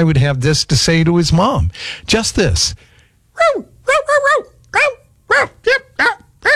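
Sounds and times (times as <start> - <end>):
speech: 0.0 - 6.5
poodle barking and whimpering: 3.4 - 6.5.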